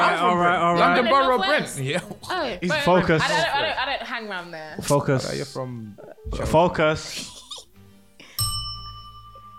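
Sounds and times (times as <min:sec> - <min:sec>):
speech: 0:00.0 - 0:07.4
laughter: 0:01.9 - 0:04.3
bell ringing: 0:08.2 - 0:09.5.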